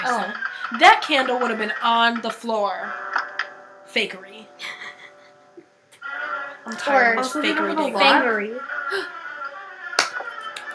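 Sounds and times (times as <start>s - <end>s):
speech: 0.0s - 3.1s, 3.9s - 4.8s, 6.6s - 9.2s
hand slap: 10.0s - 10.7s.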